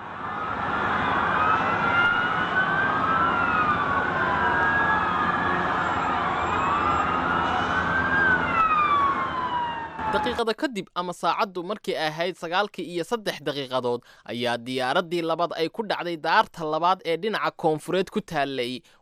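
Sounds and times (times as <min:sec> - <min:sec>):
low traffic rumble: 0:00.0 - 0:10.4
fire engine and police vehicle sirens wailing: 0:00.0 - 0:10.6
speech: 0:10.1 - 0:19.0.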